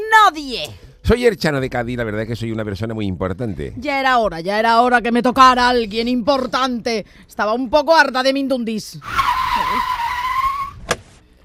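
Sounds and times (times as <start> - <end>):
speech: 0.3 - 10.0
car tires screeching as it skids to a stop: 9.0 - 11.2.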